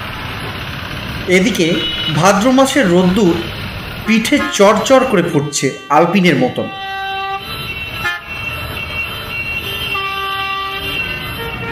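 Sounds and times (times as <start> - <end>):
tram rumbling coming down from a bridge: 0.0 - 7.4
tram horn toots: 1.2 - 11.6
speech: 1.3 - 6.8.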